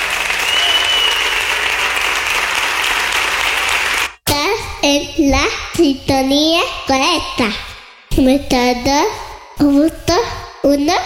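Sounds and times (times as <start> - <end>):
large crowd applauding as praise to God: 0.0 - 4.2
speech: 4.8 - 11.0.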